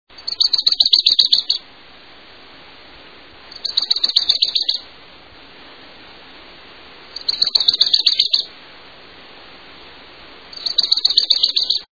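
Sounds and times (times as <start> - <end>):
Wilson's warbler singing: 0.1 - 1.7, 3.5 - 4.9, 7.1 - 8.6, 10.5 - 11.8.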